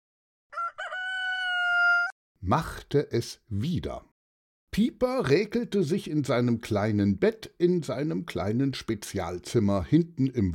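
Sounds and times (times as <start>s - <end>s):
rooster crowing on an asparagus farm: 0.5s - 2.2s
speech: 2.4s - 4.1s, 4.8s - 10.5s.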